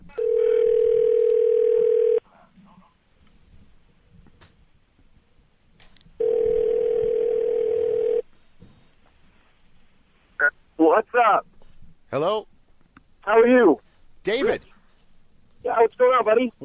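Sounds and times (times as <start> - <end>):
faint room noise: 0.0 - 16.6
outgoing phone call ringback tone: 0.1 - 2.2, 6.2 - 8.2
speech: 10.9 - 11.5, 12.1 - 12.5, 13.3 - 14.7, 15.7 - 16.6.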